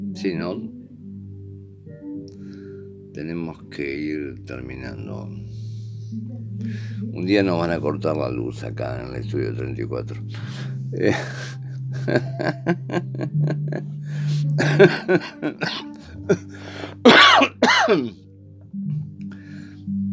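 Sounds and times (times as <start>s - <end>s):
speech: 0.2s - 0.8s, 3.2s - 18.2s
laughter: 10.4s - 16.4s
person clearing throat: 14.6s - 16.5s, 17.1s - 18.1s
person coughing in short raspy bursts: 14.6s - 16.5s, 17.1s - 18.1s.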